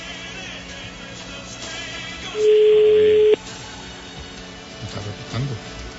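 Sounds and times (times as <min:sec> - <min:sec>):
telephone ringback tone during a call: 0:02.4 - 0:03.4.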